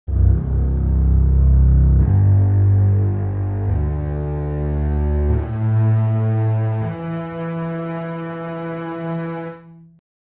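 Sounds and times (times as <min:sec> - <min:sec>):
double bass: 0:00.1 - 0:09.8.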